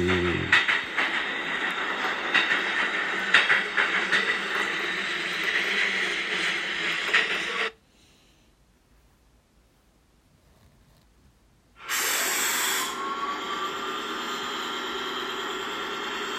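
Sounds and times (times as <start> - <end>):
train rumbling on the rails pulling into a station: 0.0 - 7.8, 12.0 - 16.3.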